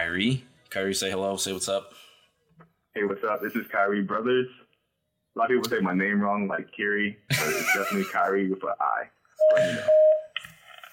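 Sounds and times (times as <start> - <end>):
speech: 0.1 - 4.6, 5.4 - 10.2
laughter: 7.3 - 8.4
phone electronic ringtone with chiming chord: 9.4 - 10.3.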